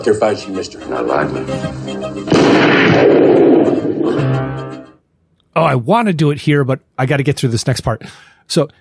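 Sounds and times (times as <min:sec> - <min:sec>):
speech: 0:00.0 - 0:04.8, 0:05.6 - 0:08.7
gunshot with booming echo from a film scene: 0:02.3 - 0:04.4.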